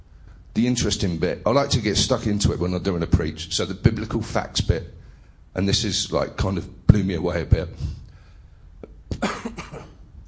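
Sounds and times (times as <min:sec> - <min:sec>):
speech: 0:00.6 - 0:05.0, 0:05.6 - 0:08.0
person coughing: 0:08.8 - 0:10.1.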